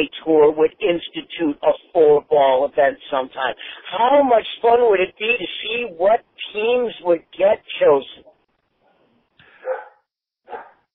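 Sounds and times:
speech: 0.0 - 8.2
dog barking: 9.5 - 10.9.

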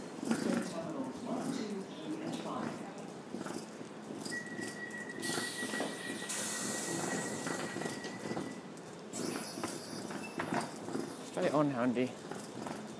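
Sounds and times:
footsteps on a railway platform: 0.0 - 12.9
train idling at a railway station with a high whine: 4.2 - 11.1
bursts of hissing air from a train: 5.2 - 8.5, 9.1 - 11.1
speech: 11.5 - 12.2.

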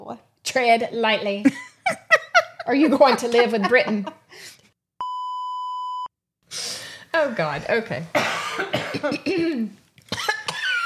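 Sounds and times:
speech: 0.1 - 2.0, 2.6 - 4.6, 7.2 - 9.8
harsh hacking coughing: 8.1 - 10.8.

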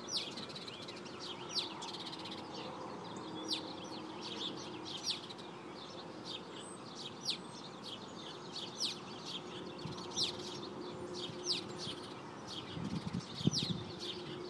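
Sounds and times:
many birds chirping in a tree: 0.0 - 14.4.

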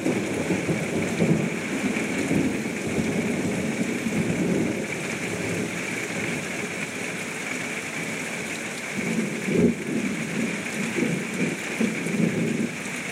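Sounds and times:
low rumbles of thunder: 0.0 - 6.4, 9.0 - 12.8
heavy rain from a summertime storm heard from under a house porch: 0.0 - 13.0.

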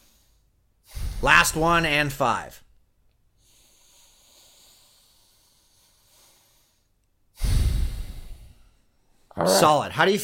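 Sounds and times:
deep breath in and out during a breathing exercise: 0.0 - 1.4, 3.4 - 9.4
speech: 1.2 - 2.6, 9.4 - 10.2.

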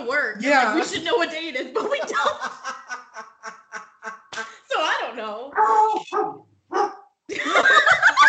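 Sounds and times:
speech: 0.2 - 2.2
people laughing loudly together: 1.7 - 4.6, 7.3 - 8.2
dog barking: 5.5 - 7.1.

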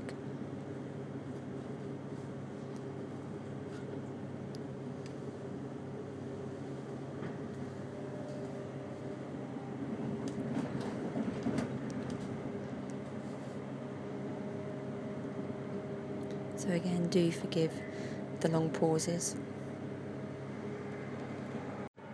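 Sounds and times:
low rumble and hum inside a moving train: 0.0 - 22.1
speech: 16.7 - 19.6.

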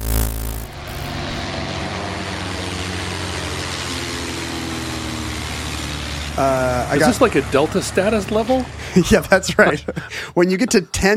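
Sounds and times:
jet airplane roaring with deep droning engine rumble: 0.0 - 9.6
laughter: 6.4 - 10.9
speech: 6.4 - 11.1.

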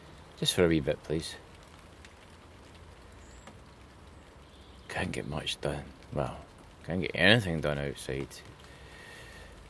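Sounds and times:
steady rain falling in wet weather: 0.0 - 9.6
speech: 0.4 - 1.4, 5.0 - 8.5.

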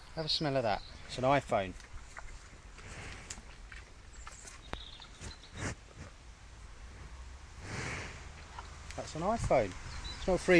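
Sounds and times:
speech: 0.2 - 1.9, 9.0 - 10.5
cows snorting in a field: 2.2 - 4.5, 5.1 - 6.2, 6.8 - 8.8.

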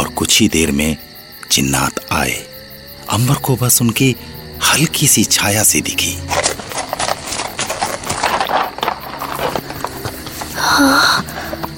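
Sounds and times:
speech: 0.2 - 2.5, 3.1 - 6.6, 10.8 - 11.2
white horses galloping away: 5.7 - 11.7.

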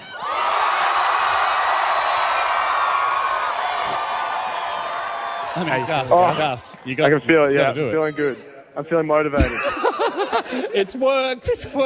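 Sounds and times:
studio audience cheering with whoops and shouts: 0.0 - 7.4
speech: 5.6 - 9.7, 10.5 - 11.8
laughter: 9.4 - 11.0.

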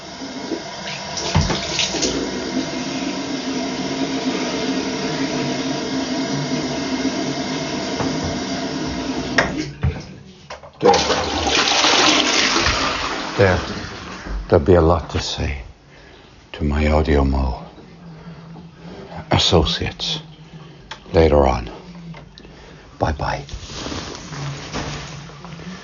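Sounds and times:
water running from a tap at home: 0.0 - 14.6
water splashing as someone wets their hair: 1.2 - 2.3
speech: 14.6 - 15.6, 16.6 - 17.6, 19.4 - 20.3, 21.1 - 21.8, 23.0 - 23.6.

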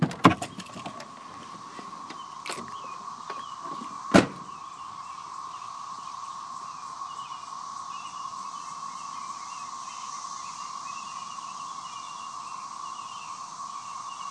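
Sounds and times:
constant buzzing drone of insects outside: 0.0 - 14.2
truck door latch clicking as the door is opened: 2.4 - 2.7, 4.1 - 4.5.

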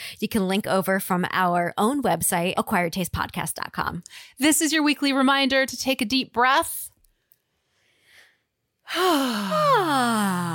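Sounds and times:
speech: 0.2 - 6.9, 8.9 - 10.5
person yawning: 8.9 - 10.5.

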